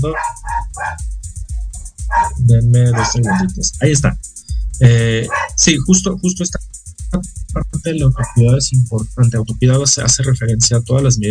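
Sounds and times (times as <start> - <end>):
dog barking: 0.0 - 1.0, 2.1 - 3.5, 5.2 - 5.6, 8.1 - 8.5
speech: 0.0 - 1.1, 2.2 - 11.2
low rumbling background: 0.0 - 11.2.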